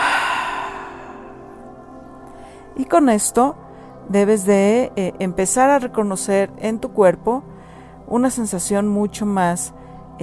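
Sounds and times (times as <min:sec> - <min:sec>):
slow exhale through the mouth during a relaxation breathing exercise: 0:00.0 - 0:01.5
speech: 0:02.8 - 0:07.5, 0:08.1 - 0:10.2.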